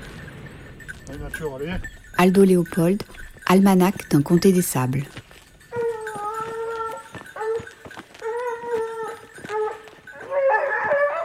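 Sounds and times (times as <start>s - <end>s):
speech: 1.1s - 5.3s
pack of hunting dogs baying: 5.4s - 11.2s.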